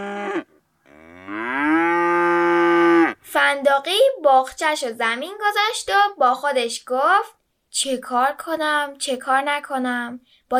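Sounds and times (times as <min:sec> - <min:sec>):
large cow mooing: 0:00.0 - 0:03.2
speech: 0:03.5 - 0:10.5.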